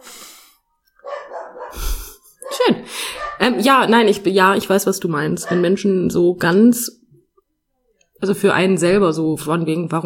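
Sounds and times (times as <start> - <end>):
dog barking in a home: 1.0 - 1.8, 2.4 - 4.2, 5.4 - 5.8
speech: 3.4 - 7.0, 8.2 - 10.0.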